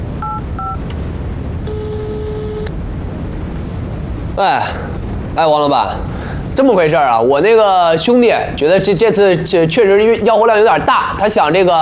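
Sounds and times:
low rumbling noise: 0:00.0 - 0:11.8
telephone dial tone: 0:00.2 - 0:00.8, 0:01.7 - 0:02.7
telephone keypad beeps: 0:00.2 - 0:00.8
speech: 0:04.4 - 0:11.8.

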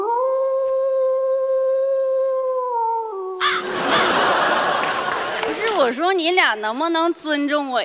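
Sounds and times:
person imitating a wolf howl: 0:00.0 - 0:03.7
laughter: 0:03.4 - 0:05.8
speech: 0:05.9 - 0:07.8.

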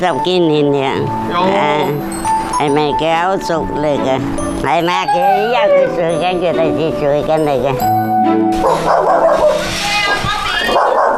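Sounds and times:
speech: 0:00.0 - 0:09.9
dog barking and yipping excitedly at home: 0:08.6 - 0:09.7, 0:10.5 - 0:11.1.

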